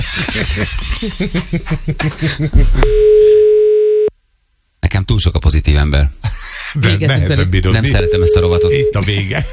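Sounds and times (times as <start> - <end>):
laughter: 0.0 - 2.8, 9.0 - 9.5
speech: 0.1 - 3.5, 5.0 - 9.5
telephone ringback tone on an unanswered call: 2.8 - 4.1, 8.0 - 9.0.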